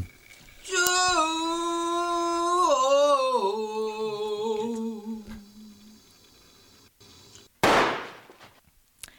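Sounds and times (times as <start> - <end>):
sustained wavering sung or instrumental note: 0.7 - 6.0
pistol shot in a film trailer: 7.6 - 8.4.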